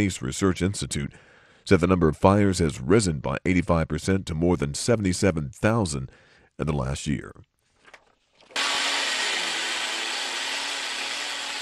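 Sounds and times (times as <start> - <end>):
speech: 0.0 - 7.5
power drill driving screws into plywood over windows in Puerto Rico: 8.5 - 11.5.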